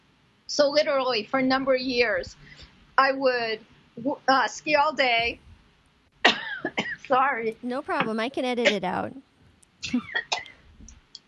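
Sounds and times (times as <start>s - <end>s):
speech: 0.5s - 5.4s, 6.3s - 10.4s
harsh coughs: 6.2s - 7.0s, 9.9s - 10.6s.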